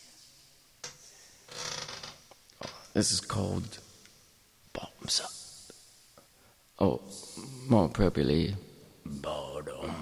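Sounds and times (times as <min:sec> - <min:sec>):
squeaky chair creaking and squeaking: 0:00.8 - 0:03.0
speech: 0:03.0 - 0:03.8, 0:05.1 - 0:05.3, 0:06.8 - 0:09.2.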